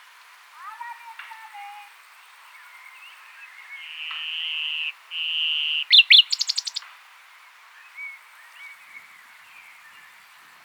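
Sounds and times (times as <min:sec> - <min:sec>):
common nightingale Luscinia megarhynchos singing: 0:02.5 - 0:06.9.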